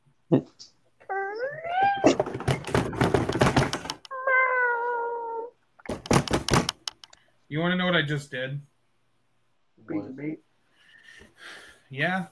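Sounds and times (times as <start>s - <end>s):
speech: 0.3s - 0.8s, 7.5s - 8.7s, 9.9s - 10.5s, 11.4s - 12.2s
cat meowing: 1.0s - 2.2s, 4.1s - 5.6s
knock: 2.2s - 4.0s, 5.9s - 6.8s.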